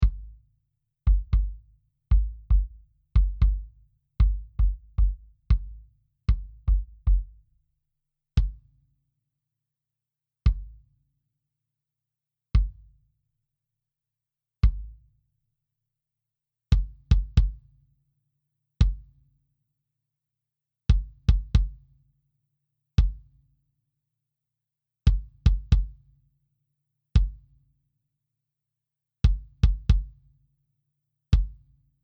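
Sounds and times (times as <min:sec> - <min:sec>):
dry kick drum: 0:00.0 - 0:00.5, 0:01.1 - 0:07.6, 0:08.4 - 0:08.7, 0:10.5 - 0:10.8, 0:12.6 - 0:12.9, 0:14.6 - 0:15.2, 0:16.7 - 0:17.7, 0:18.8 - 0:19.1, 0:20.9 - 0:21.8, 0:23.0 - 0:23.3, 0:25.1 - 0:26.1, 0:27.2 - 0:27.4, 0:29.2 - 0:30.3, 0:31.4 - 0:31.8.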